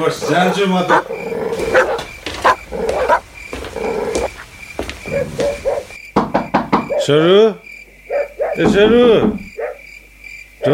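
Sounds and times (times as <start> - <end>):
speech: 0.0 - 1.9, 7.1 - 7.6, 8.6 - 9.4
dog barking: 0.0 - 4.2, 5.0 - 6.0, 6.8 - 7.1, 8.1 - 8.7, 9.5 - 9.9.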